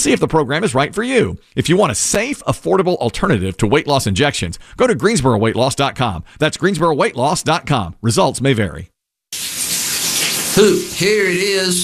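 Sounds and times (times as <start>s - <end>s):
speech: 0.0s - 8.9s, 10.6s - 11.8s
shower water running: 9.3s - 11.8s.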